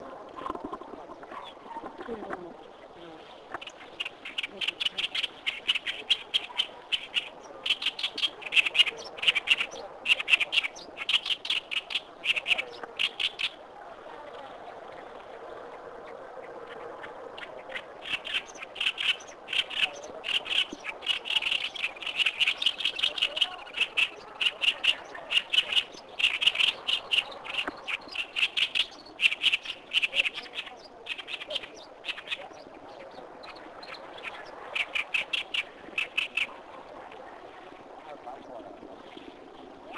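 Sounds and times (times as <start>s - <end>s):
Acrocephalus orientalis singing: 3.0s - 13.6s, 17.4s - 36.6s.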